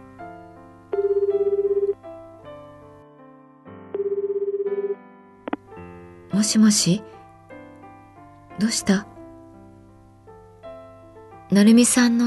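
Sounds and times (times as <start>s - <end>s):
music: 0.0s - 12.2s
mobile phone call ringing tone: 1.0s - 2.0s, 3.9s - 5.0s
speech: 6.4s - 7.2s, 8.6s - 9.1s, 11.5s - 12.2s.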